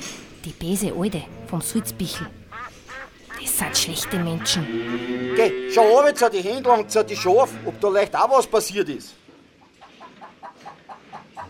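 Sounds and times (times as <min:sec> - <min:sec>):
speech: 0:00.4 - 0:02.4, 0:03.6 - 0:09.2
hens clucking on a farm: 0:00.6 - 0:06.4, 0:09.6 - 0:11.4.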